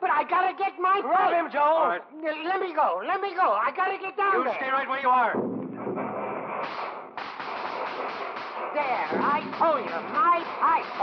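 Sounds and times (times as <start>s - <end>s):
speech: 0.2s - 5.6s, 8.8s - 11.0s
dense barrage of fireworks crackling and bursting: 5.7s - 11.0s
rising and falling fireworks whistles: 6.4s - 11.0s.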